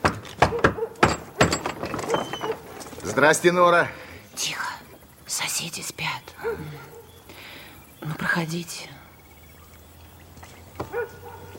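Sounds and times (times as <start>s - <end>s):
firm knocking on a wooden apartment door: 0.0s - 2.2s
faint noise: 0.0s - 11.5s
speech: 3.1s - 4.5s, 8.2s - 9.0s.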